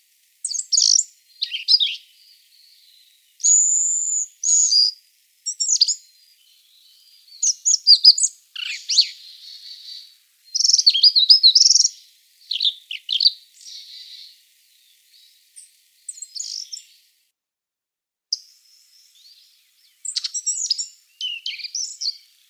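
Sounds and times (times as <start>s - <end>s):
Asian brown flycatcher song with high thin twitters: 0.4s - 17.2s, 18.3s - 22.4s.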